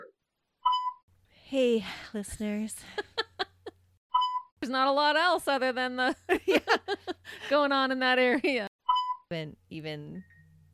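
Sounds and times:
speech: 1.5 - 3.1, 4.7 - 8.7, 9.3 - 10.3
phone notification beep and electronic tones: 4.2 - 4.5, 8.9 - 9.3.

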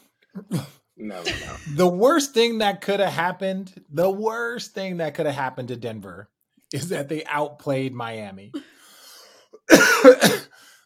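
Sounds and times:
harsh raspy coughing: 0.4 - 1.8, 9.6 - 10.6
speech: 0.4 - 8.7, 9.7 - 10.6.

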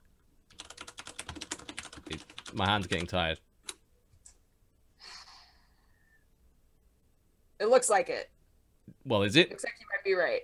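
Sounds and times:
quiet typing on a computer keyboard during a search: 0.5 - 3.8
speech: 2.1 - 3.5, 7.8 - 8.4, 9.0 - 10.4.

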